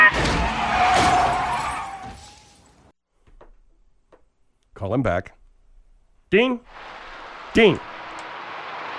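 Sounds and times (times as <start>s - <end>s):
vehicle tires or brakes squealing in a skid: 0.0s - 2.7s, 6.7s - 8.9s
vehicle crash with crashing and shattering: 0.2s - 2.9s
speech: 4.8s - 5.4s, 6.3s - 7.0s, 7.6s - 7.9s.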